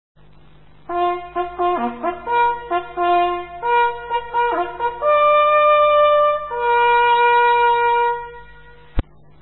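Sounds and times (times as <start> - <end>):
hunting horn signals: 0.9 - 9.0.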